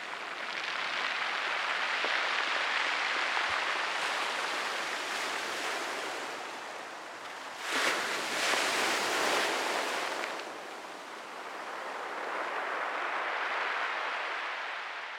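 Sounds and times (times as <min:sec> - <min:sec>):
waves at a bay in West Clare: 0:00.0 - 0:15.1
wind at a bay in West Clare: 0:00.0 - 0:15.1.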